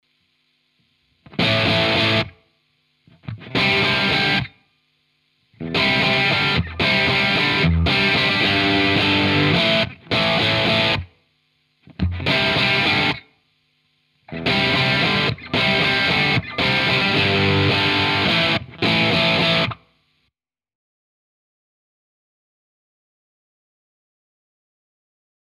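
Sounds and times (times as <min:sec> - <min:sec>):
Telecaster electric guitar through a Plexi amplifier: 0:01.2 - 0:02.4, 0:03.1 - 0:04.6, 0:05.6 - 0:11.1, 0:11.8 - 0:13.3, 0:14.3 - 0:19.8.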